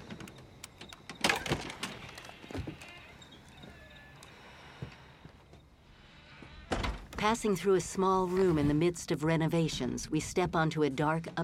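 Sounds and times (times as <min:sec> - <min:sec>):
door creaking: 0:00.0 - 0:05.1, 0:06.0 - 0:07.4
speech: 0:07.2 - 0:11.4.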